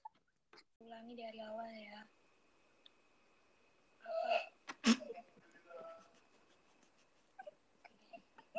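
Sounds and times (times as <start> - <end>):
speech: 0.9 - 2.2
loud sharp sneeze with breathy lead-in: 4.7 - 5.1.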